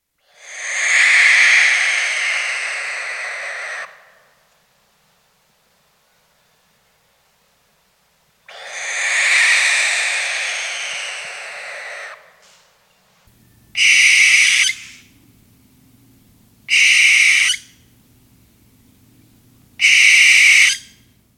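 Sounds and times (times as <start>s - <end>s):
barn owl: 0.2s - 4.5s, 8.5s - 12.7s, 13.4s - 15.4s, 16.6s - 18.0s, 19.8s - 21.1s.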